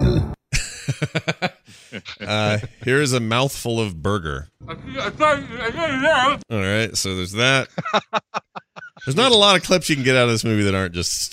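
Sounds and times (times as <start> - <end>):
deep rumbling burp from a movie scene: 0.0 - 0.4
laughter: 0.6 - 3.1, 7.4 - 10.6
speech: 1.0 - 8.2, 9.0 - 11.3.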